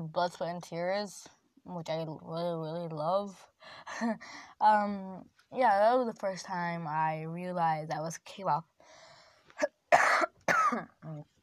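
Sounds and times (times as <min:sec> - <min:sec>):
speech: 0:00.1 - 0:08.7, 0:09.6 - 0:11.3
sick person coughing with a lingering cough: 0:09.6 - 0:11.2.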